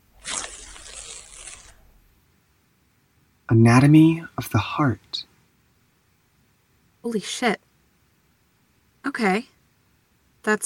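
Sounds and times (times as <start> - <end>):
paper envelope being torn open: 0.1 - 2.0
speech: 3.5 - 5.3, 7.0 - 7.7, 9.0 - 9.5, 10.4 - 10.6.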